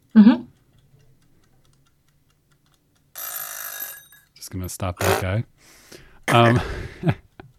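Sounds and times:
clock ticking: 0.0 - 5.6, 6.3 - 7.5
speech: 0.1 - 0.4, 4.7 - 7.2
clock alarm bell ringing: 3.2 - 4.3.

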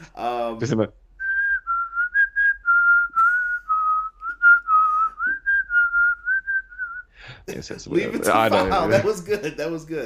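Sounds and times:
speech: 0.5 - 1.0, 7.5 - 10.0
person whistling a melody: 1.2 - 7.1.

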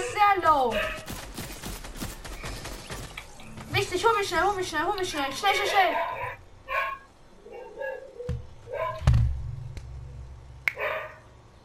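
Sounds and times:
speech: 0.4 - 1.0, 3.8 - 6.3
dog barking: 0.7 - 1.1, 5.5 - 9.0, 10.8 - 11.2
low rumbling background: 8.4 - 10.7.

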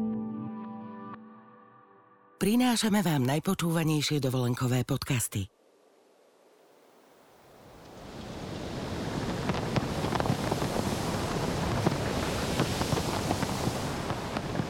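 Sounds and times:
speech: 2.4 - 5.6
sea waves washing in: 7.2 - 14.6
seaside wind roaring across the microphone: 7.6 - 14.6.

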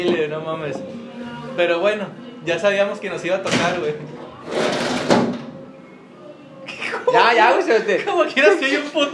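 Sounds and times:
speech: 0.0 - 4.8, 7.1 - 9.1
faint murmur: 0.0 - 9.1
door swinging shut and latching: 3.4 - 5.6.

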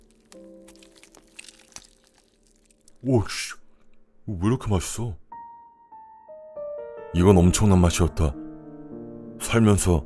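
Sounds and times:
biting into beef jerky: 0.0 - 4.0
speech: 3.0 - 3.6, 4.3 - 5.2, 7.1 - 8.4, 9.5 - 10.0.

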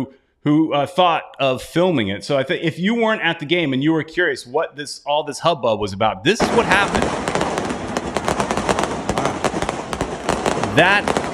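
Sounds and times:
speech: 0.0 - 7.4, 10.8 - 11.2
firework bangs and crackles: 6.4 - 11.3.

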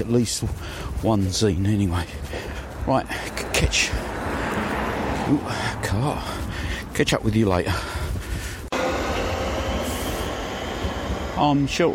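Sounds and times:
speech: 0.0 - 4.3, 5.3 - 8.0, 11.4 - 11.9
train rumbling past a railway station shelter: 3.4 - 7.0, 8.7 - 11.9.

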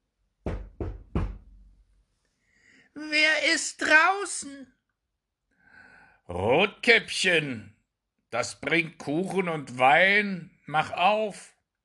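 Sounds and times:
firm knocking on a wooden door: 0.4 - 1.7
speech: 3.0 - 4.8, 6.3 - 7.7, 8.3 - 11.6.

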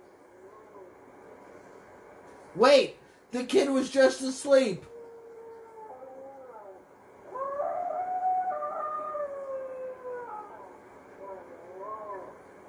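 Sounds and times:
speech: 2.6 - 4.9
dog howling: 4.9 - 12.4.

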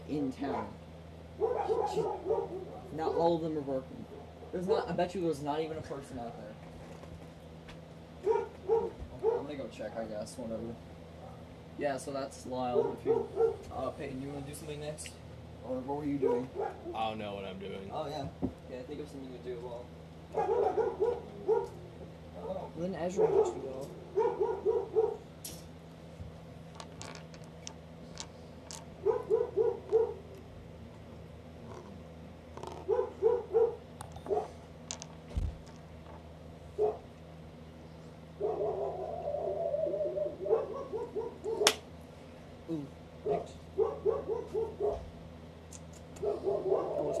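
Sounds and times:
steady low hum: 0.0 - 47.1
speech: 0.1 - 0.8, 1.4 - 6.7, 9.6 - 10.9, 11.8 - 21.8, 22.5 - 24.6
dogs barking: 0.4 - 4.8, 8.2 - 9.7, 11.2 - 11.6, 12.6 - 13.8, 16.2 - 17.0, 19.6 - 25.4, 28.9 - 30.5, 32.7 - 34.7, 36.7 - 37.2, 38.3 - 41.8, 43.2 - 45.2, 46.2 - 47.1.

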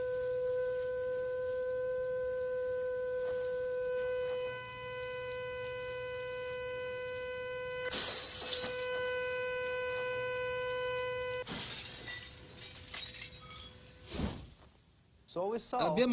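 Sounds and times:
steady resonant tone with harmonics: 0.0 - 14.0
glass shattering: 7.9 - 8.9, 11.4 - 14.1
speech: 15.4 - 16.1.

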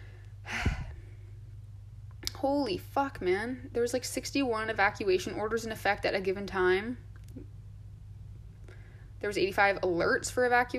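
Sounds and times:
deep airy breath during a breathing exercise: 0.0 - 1.4, 8.6 - 9.2
low hum: 0.0 - 10.7
speech: 2.4 - 7.5, 9.2 - 10.7.

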